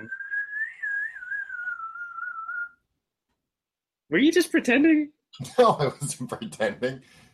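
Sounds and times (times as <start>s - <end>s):
speech: 0.0s - 0.2s, 4.1s - 7.3s
person whistling a sustained wavering tone: 0.0s - 2.8s
laughter: 5.4s - 6.6s.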